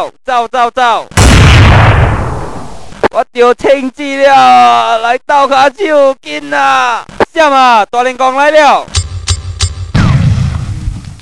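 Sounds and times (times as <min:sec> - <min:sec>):
speech: 0:00.0 - 0:01.2, 0:03.2 - 0:09.0
bomb exploding in a video game: 0:01.2 - 0:02.9, 0:09.9 - 0:11.2.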